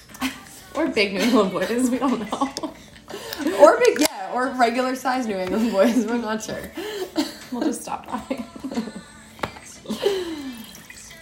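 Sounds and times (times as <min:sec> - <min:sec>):
speech: 0:00.8 - 0:02.7, 0:03.6 - 0:06.9, 0:07.5 - 0:08.9
laughter: 0:01.1 - 0:03.9, 0:05.5 - 0:09.2
limoncello drink pouring into a glass: 0:10.3 - 0:11.2.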